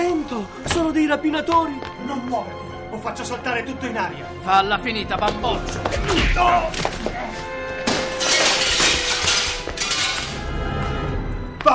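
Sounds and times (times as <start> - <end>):
speech: 0.3 - 7.6
glass shattering with falling shards: 7.8 - 10.4.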